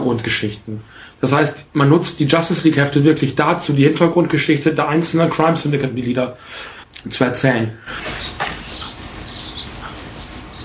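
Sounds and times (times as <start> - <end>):
speech: 0.0 - 8.4
steady hiss of noise: 0.0 - 10.6
small bird chirping: 7.9 - 10.6.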